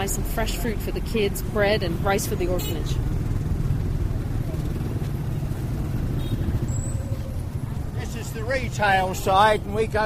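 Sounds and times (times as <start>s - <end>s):
speech: 0.0s - 3.2s, 8.5s - 10.0s
motorbikes and engines rumbling in busy market street traffic: 0.0s - 10.0s
faint high squeal: 6.6s - 7.4s.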